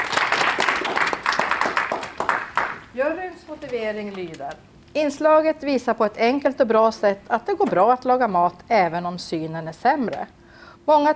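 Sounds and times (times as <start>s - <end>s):
crowd applauding: 0.0s - 2.9s
speech: 3.0s - 11.1s.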